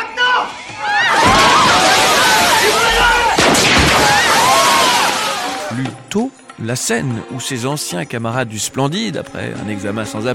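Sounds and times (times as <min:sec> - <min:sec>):
gunshots fired at a shop window during a robbery: 0:01.2 - 0:05.6
speech: 0:06.1 - 0:10.3.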